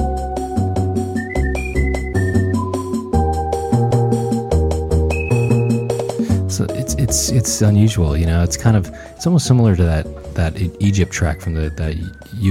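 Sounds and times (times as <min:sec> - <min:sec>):
steady plucked bass pattern: 0:00.0 - 0:08.7
bouncy video game shop music: 0:00.0 - 0:12.4
whistled melody in video game shop music: 0:00.4 - 0:06.4, 0:10.6 - 0:12.4
speech: 0:07.0 - 0:12.4.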